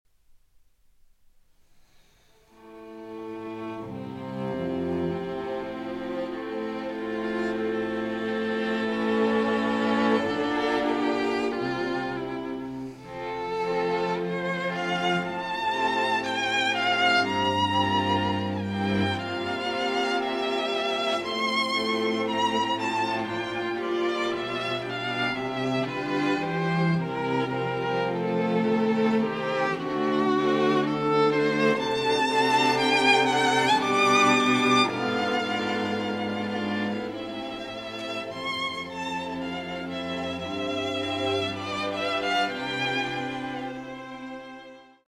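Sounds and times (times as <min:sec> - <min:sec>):
string quartet playing in B flat major: 0:02.0 - 0:45.0.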